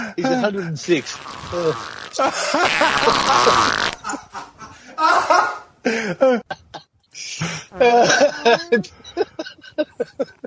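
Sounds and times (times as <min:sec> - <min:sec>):
speech: 0:00.2 - 0:04.2, 0:06.1 - 0:06.4, 0:07.8 - 0:09.0
drawn-out noisy fart sound: 0:00.9 - 0:04.0
laughter: 0:02.1 - 0:10.4.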